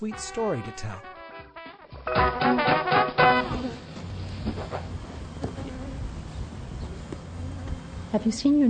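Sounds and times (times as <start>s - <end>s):
speech: 0.0s - 1.1s, 8.1s - 8.6s
honeybees buzzing: 3.2s - 8.6s.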